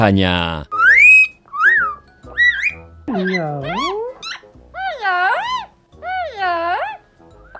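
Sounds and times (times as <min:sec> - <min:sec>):
speech: 0:00.0 - 0:00.8, 0:03.1 - 0:04.0
Amazon parrot in Norfolk giving short bright rising whistles: 0:00.7 - 0:04.4
Amazon parrot warbling voice-like squawks saying hello: 0:00.8 - 0:06.4.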